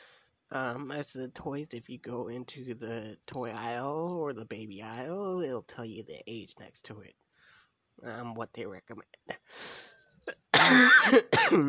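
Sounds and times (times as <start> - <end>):
raspy breath: 0.0 - 0.4, 7.3 - 7.8, 9.5 - 10.0
speech: 0.5 - 7.2, 8.0 - 11.6
person coughing with a throaty rasp: 10.3 - 11.6.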